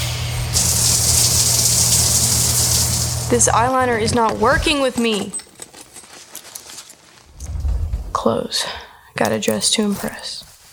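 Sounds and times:
shower water running in a loud hissing spray: 0.3 - 3.6
speech: 3.3 - 5.4, 8.2 - 10.5.

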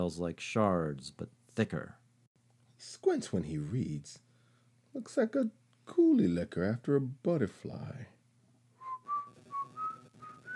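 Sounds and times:
speech: 0.0 - 2.0, 2.8 - 4.2, 5.0 - 8.1
person whistling a short tune: 8.8 - 10.5.

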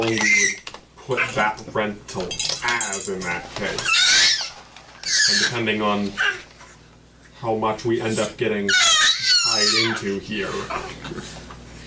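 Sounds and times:
adult talking: 0.0 - 3.9, 5.2 - 6.3, 7.4 - 11.0
speech: 0.0 - 4.1, 5.3 - 6.4, 7.4 - 8.9, 9.5 - 11.4
baby squealing happily: 0.1 - 0.6, 3.8 - 6.5, 8.7 - 11.0.

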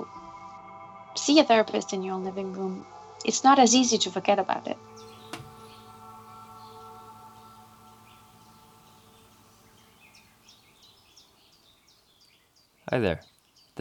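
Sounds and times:
speech: 1.2 - 5.1, 12.9 - 13.7
birds chirping at a little house in the countryside: 3.4 - 13.7
gentle rain at a little house in the countryside: 5.0 - 13.7.

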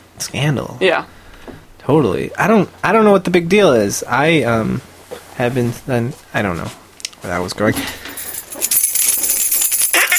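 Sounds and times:
speech: 0.2 - 1.2, 1.8 - 8.1
keys and loose coins jingling: 8.0 - 10.1.

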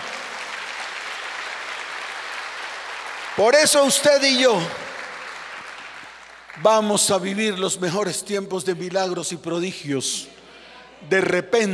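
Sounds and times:
audience applauding: 0.0 - 7.3
speech: 3.4 - 4.8, 6.6 - 10.4, 11.0 - 11.7.

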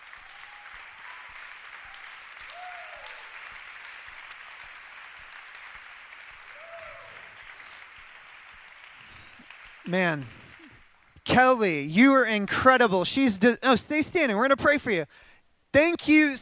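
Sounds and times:
faint cheers or voices: 0.0 - 4.0, 6.5 - 7.8
audience applause: 0.0 - 11.2
speech: 9.9 - 10.4, 11.3 - 16.4.

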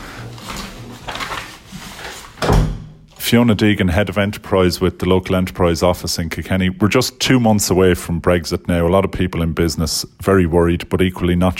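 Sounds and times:
shuffling and handling noises: 0.0 - 2.4
door being pulled shut: 2.4 - 3.0
speech: 3.3 - 11.5.

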